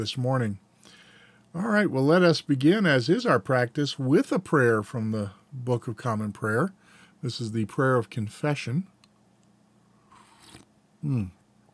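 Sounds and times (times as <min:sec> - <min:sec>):
speech: 0:00.0 - 0:00.7, 0:01.5 - 0:08.9, 0:11.0 - 0:11.4
slurping sip of hot coffee from a mug: 0:10.1 - 0:10.7.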